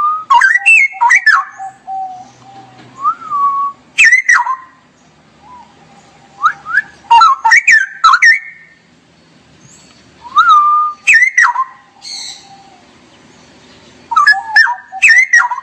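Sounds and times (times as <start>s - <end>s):
straw-headed bulbul singing fluty notes and warbles: 0.0s - 4.8s, 5.4s - 8.9s, 9.7s - 12.8s, 14.0s - 15.6s.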